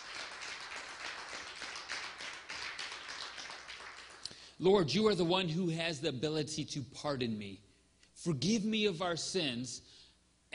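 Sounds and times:
audience applause: 0:00.0 - 0:04.3
speech: 0:04.6 - 0:10.5.

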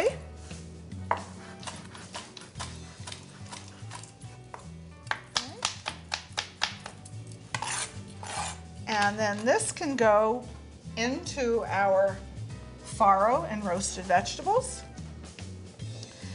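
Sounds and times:
music playing: 0:00.0 - 0:16.3
chef's knife roughly chopping fresh herbs: 0:01.0 - 0:09.1
speech: 0:09.0 - 0:12.3, 0:13.0 - 0:14.8.

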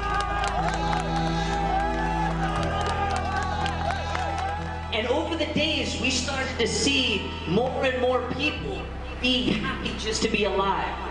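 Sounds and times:
crowd whoops: 0:00.0 - 0:04.9
people clapping: 0:00.0 - 0:04.9
large crowd cheering and shouting as a trapped man is dug out after an earthquake: 0:00.0 - 0:11.0
speech: 0:05.0 - 0:11.0.

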